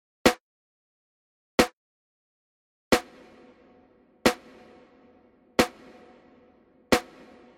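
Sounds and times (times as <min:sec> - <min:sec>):
large hall reverb: 0:03.3 - 0:07.5.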